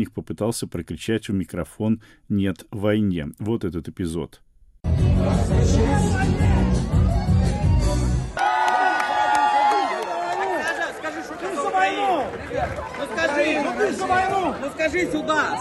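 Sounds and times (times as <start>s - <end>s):
speech: 0.0s - 4.4s, 5.0s - 7.0s, 12.6s - 15.5s
heavy thumping party music: 4.8s - 8.4s
dense party crowd chattering, shouting and cheering: 4.9s - 15.5s.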